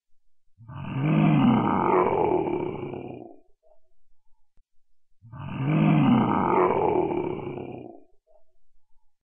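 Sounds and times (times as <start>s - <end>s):
cartoon monster voice: 0.7s - 3.3s, 5.3s - 8.0s.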